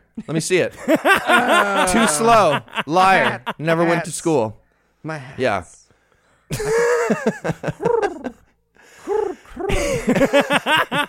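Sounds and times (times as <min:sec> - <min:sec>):
speech: 0:00.2 - 0:05.8, 0:06.5 - 0:08.4, 0:09.0 - 0:11.0
laughter: 0:00.7 - 0:04.0, 0:06.5 - 0:11.0
person imitating pigeon cooing: 0:09.0 - 0:09.7.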